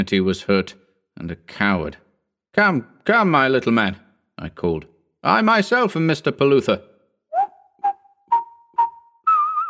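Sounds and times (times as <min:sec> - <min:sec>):
speech: 0:00.0 - 0:06.9
little boy whistling a short melody: 0:07.3 - 0:09.6.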